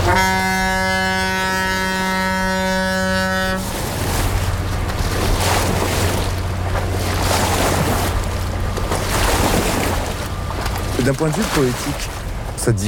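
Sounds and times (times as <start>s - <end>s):
large river boat horn blast: 0.0s - 4.3s
large river boat low engine rumble: 0.0s - 12.8s
water rushing and splashing from boat wake waves on a river: 0.0s - 12.8s
speech: 11.1s - 12.8s.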